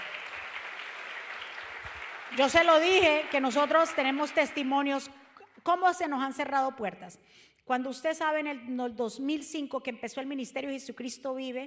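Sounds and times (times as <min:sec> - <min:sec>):
large crowd applauding: 0:00.0 - 0:04.9
speech: 0:02.3 - 0:11.6.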